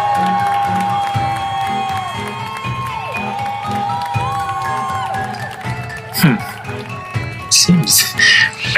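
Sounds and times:
large crowd in a grassy area cheering wildly: 0.0s - 8.7s.

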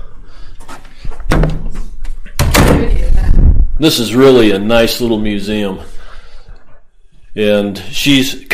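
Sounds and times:
museum door pulled shut with heavy thumps and rattling knocks: 1.3s - 1.7s, 2.3s - 3.1s
speech: 3.8s - 5.9s, 7.3s - 8.5s.

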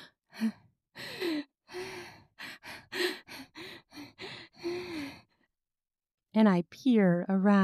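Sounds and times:
rapid gasping breaths: 0.3s - 5.4s
speech: 0.4s - 0.6s, 6.4s - 7.6s.

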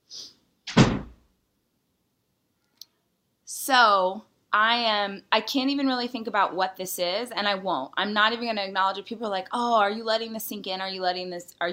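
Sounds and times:
door swishing open: 0.7s - 1.2s
faint click: 2.6s - 3.0s
speech: 3.7s - 11.7s.

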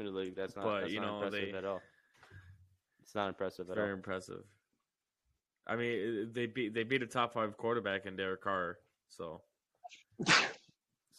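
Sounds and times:
speech: 0.0s - 2.4s, 3.1s - 4.6s, 5.6s - 10.5s
sneeze: 10.2s - 10.7s.

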